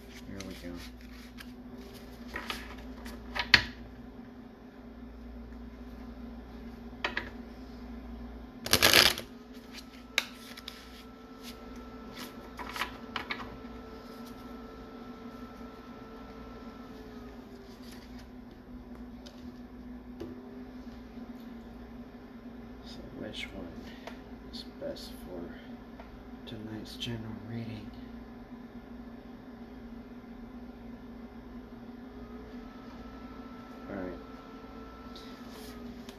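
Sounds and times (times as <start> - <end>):
tarot cards being shuffled: 0.0 - 3.2, 8.7 - 13.0
steady low electrical hum: 0.0 - 36.1
speech: 26.9 - 27.8.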